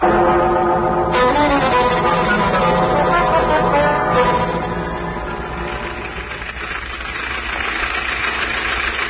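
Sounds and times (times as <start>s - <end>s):
bus engine running: 0.0s - 9.0s.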